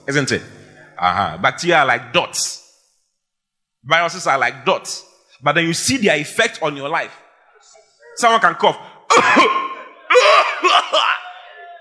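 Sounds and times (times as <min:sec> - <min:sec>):
speech: 0:00.1 - 0:02.6, 0:03.8 - 0:07.2, 0:08.2 - 0:09.6
man coughing: 0:09.1 - 0:11.2
laughter: 0:09.1 - 0:11.7.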